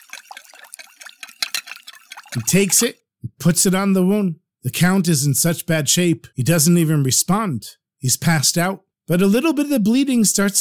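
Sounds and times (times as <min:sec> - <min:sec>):
spoon stirring powder into water in a bowl: 0:00.0 - 0:02.9
speech: 0:02.3 - 0:10.5.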